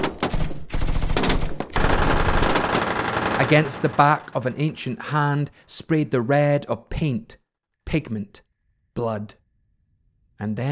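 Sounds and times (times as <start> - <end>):
rifle shots: 1.1 - 5.0
speech: 3.4 - 8.4, 9.0 - 9.4, 10.4 - 10.7.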